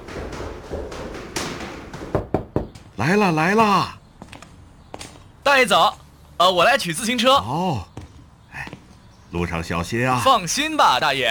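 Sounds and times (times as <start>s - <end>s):
knocking on a door: 0.0s - 3.0s
speech: 3.0s - 4.0s, 5.5s - 7.9s, 9.3s - 11.2s.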